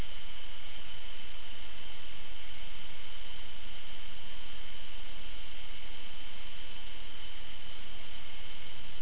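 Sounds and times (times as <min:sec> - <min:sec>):
night ambience: 0:00.0 - 0:08.9.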